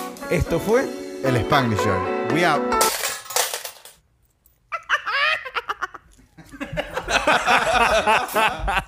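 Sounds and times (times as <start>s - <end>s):
speech: 0.3s - 3.0s, 8.0s - 8.8s
coins being tossed and dropping: 2.8s - 4.6s
several people laughing loudly: 4.7s - 8.8s.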